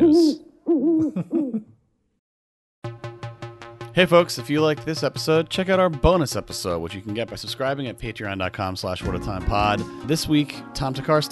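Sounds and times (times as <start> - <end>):
owl hooting: 0.0 - 1.6
speech: 1.0 - 1.8, 4.0 - 11.3.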